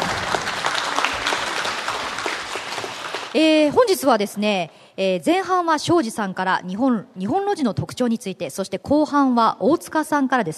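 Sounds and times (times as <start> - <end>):
crowd clapping to welcome presenters: 0.0 - 3.8
speech: 3.4 - 10.5.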